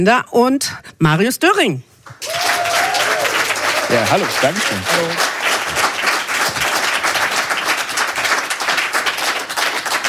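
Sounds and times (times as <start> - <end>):
speech: 0.0 - 2.5, 3.9 - 5.3
audience applause: 2.2 - 10.0.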